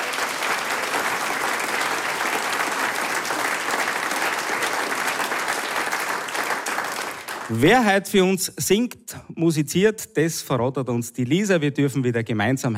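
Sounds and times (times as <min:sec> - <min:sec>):
sustained applause from a large audience: 0:00.0 - 0:08.0
speech: 0:07.5 - 0:12.7.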